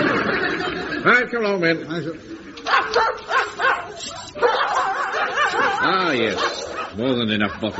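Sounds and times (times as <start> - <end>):
laughter: 0.0 - 1.3, 2.0 - 7.7
speech: 1.0 - 3.2, 4.0 - 7.7
several dogs barking and yipping in pens: 2.6 - 7.7.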